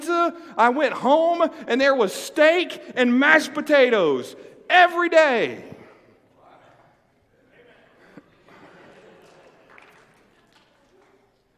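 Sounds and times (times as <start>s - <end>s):
speech: 0.2s - 5.8s
laughter: 7.3s - 10.5s
audience applauding: 8.5s - 11.5s.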